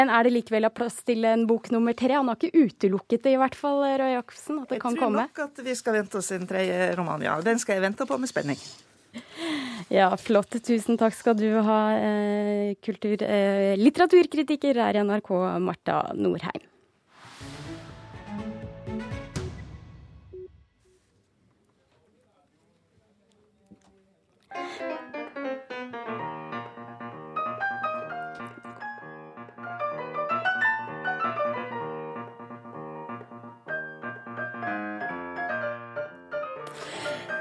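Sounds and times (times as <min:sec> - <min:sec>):
speech: 0:00.0 - 0:16.7
brief burst of sound: 0:17.1 - 0:18.3
two pianists playing piano together: 0:24.5 - 0:37.4.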